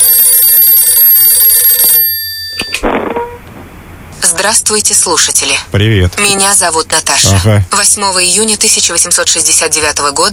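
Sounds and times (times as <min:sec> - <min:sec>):
telephone ringing loudly: 0:00.0 - 0:02.8
speech: 0:04.4 - 0:10.3.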